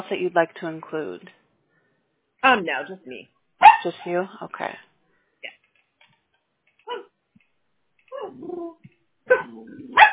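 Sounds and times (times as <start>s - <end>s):
speech: 0.0s - 1.4s, 2.4s - 4.9s
small female mixed-breed rescue dog barking: 3.6s - 3.9s, 6.9s - 7.1s, 9.3s - 10.1s.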